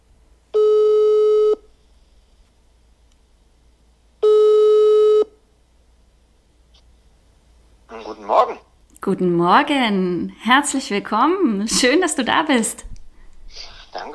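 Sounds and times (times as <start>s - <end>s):
quiet telephone line hum: 0.5s - 1.7s, 4.2s - 5.5s
speech: 8.3s - 12.9s, 13.5s - 14.1s.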